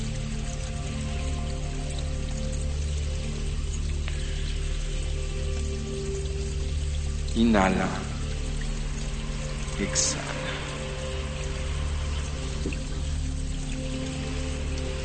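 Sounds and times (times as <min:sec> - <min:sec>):
low sustained hum: 0:00.0 - 0:15.0
spring water flowing over stones in a mountain stream: 0:00.0 - 0:15.0
speech: 0:07.4 - 0:08.1, 0:09.8 - 0:10.2.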